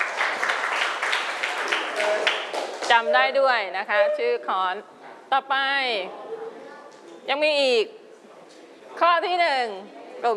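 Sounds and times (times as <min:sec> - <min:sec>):
children clapping for a classmate during a lesson: 0:00.0 - 0:03.1
speech: 0:02.9 - 0:06.3, 0:07.2 - 0:08.0, 0:09.0 - 0:10.3.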